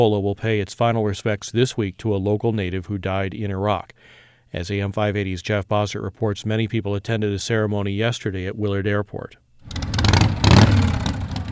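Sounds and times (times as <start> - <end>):
speech: 0.0 - 10.0
motorcycles revving engines in a memorial procession at an airport: 9.6 - 11.5.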